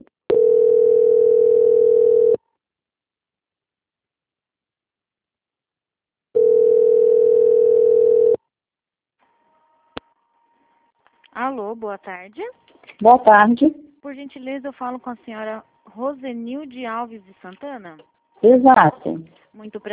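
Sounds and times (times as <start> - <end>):
telephone line beeps while a bank call is transferred: 0.3 - 2.4, 6.4 - 8.4
speech: 11.8 - 19.9.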